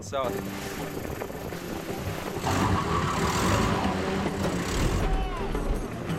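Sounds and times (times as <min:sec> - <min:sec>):
wheels spinning in sand: 0:00.3 - 0:05.4
car engine straining with tire stuck in sand: 0:01.4 - 0:06.1.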